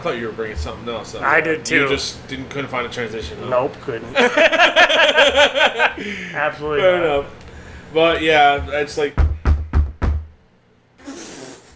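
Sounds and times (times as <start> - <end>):
speech: 0.0 - 9.2
laughter: 4.2 - 6.5
heavy booming knocks on a door: 8.2 - 10.4.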